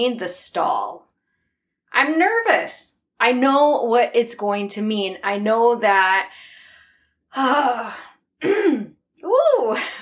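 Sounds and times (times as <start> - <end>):
speech: 0.0 - 1.1, 1.9 - 6.5, 7.3 - 10.0
person clearing throat: 8.4 - 9.0.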